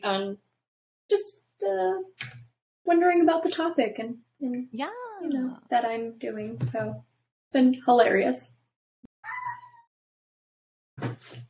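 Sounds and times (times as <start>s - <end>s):
speech: 0.0s - 0.5s, 1.1s - 8.6s
cat meowing loudly for attention: 9.2s - 9.8s.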